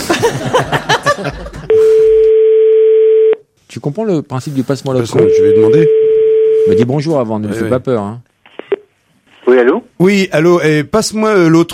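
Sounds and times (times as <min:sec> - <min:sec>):
laughter: 0:00.0 - 0:01.7
speech: 0:00.2 - 0:01.8, 0:03.8 - 0:08.3, 0:09.4 - 0:11.7
steady loud telephone line tone as a call is placed: 0:01.7 - 0:03.4, 0:05.2 - 0:06.9.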